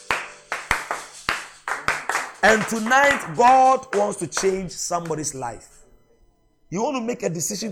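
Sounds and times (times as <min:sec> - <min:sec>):
congregation clapping in a steady lively rhythm: 0:00.0 - 0:05.8
speech: 0:02.4 - 0:05.7, 0:06.7 - 0:07.7.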